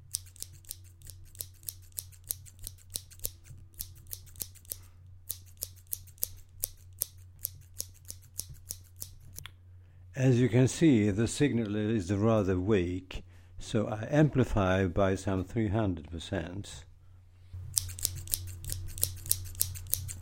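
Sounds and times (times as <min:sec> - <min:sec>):
low constant hum: 0:00.0 - 0:20.1
scissors snipping next to the microphone: 0:00.1 - 0:09.5, 0:17.7 - 0:20.1
speech: 0:10.2 - 0:16.9.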